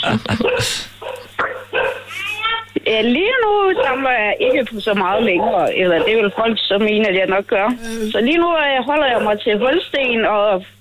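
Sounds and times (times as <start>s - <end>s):
speech: 0.0s - 1.0s, 2.9s - 10.7s
several dogs barking in overlapping bursts: 0.3s - 2.2s, 3.3s - 7.0s, 8.9s - 10.2s
dog yipping: 0.4s - 2.6s, 3.8s - 6.5s.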